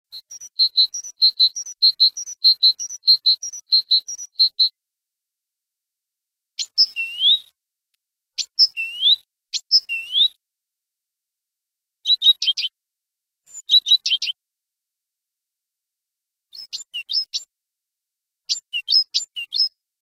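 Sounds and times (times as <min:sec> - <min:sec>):
great tit singing: 0:00.2 - 0:04.8, 0:06.6 - 0:07.5, 0:08.4 - 0:10.4, 0:12.0 - 0:12.7, 0:13.5 - 0:14.4, 0:16.5 - 0:17.5, 0:18.5 - 0:19.8.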